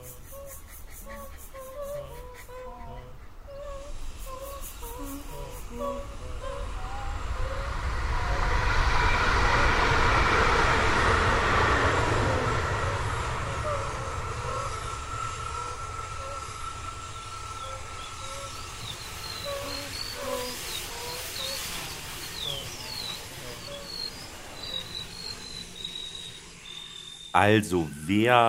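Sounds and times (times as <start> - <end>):
birds chirping and singing: 0.0 - 7.6, 13.4 - 27.3
S-Bahn commuter train rushing past: 3.8 - 28.4
speech: 27.4 - 28.4.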